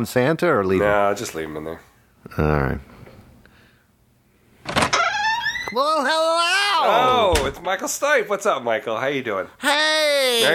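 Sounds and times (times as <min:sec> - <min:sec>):
speech: 0:00.0 - 0:02.9, 0:05.7 - 0:10.5
front door swinging open with a scraping rush: 0:04.7 - 0:05.8, 0:07.1 - 0:07.7.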